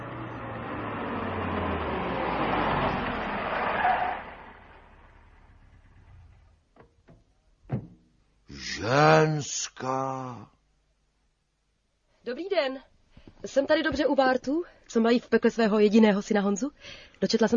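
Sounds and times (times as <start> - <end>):
car engine rumbling as it arrives and stops: 0.0 - 8.4
sharp clicks and thuds: 6.7 - 8.2
speech: 8.8 - 10.6, 12.2 - 17.5.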